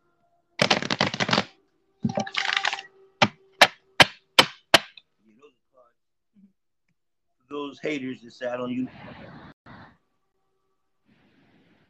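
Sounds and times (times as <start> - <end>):
deck of cards riffled: 0.6 - 1.5, 2.1 - 4.9
speech: 7.5 - 9.4.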